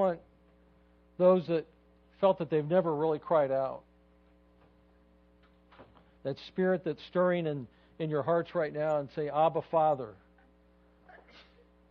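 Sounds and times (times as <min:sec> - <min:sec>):
speech: 0:00.0 - 0:00.3, 0:01.2 - 0:03.9, 0:06.2 - 0:10.2
steady low electrical hum: 0:00.0 - 0:11.8
sneeze: 0:11.1 - 0:11.7.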